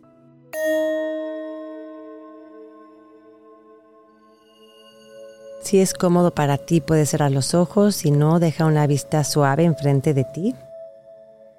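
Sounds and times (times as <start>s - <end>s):
small meditation bell struck to open a session: 0.6s - 3.0s
speech: 5.6s - 10.6s.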